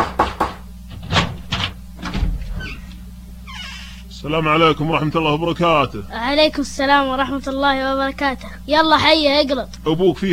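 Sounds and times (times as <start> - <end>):
solid raps on a door: 0.0 - 0.6
low steady hum: 0.0 - 10.3
speech: 4.2 - 10.3.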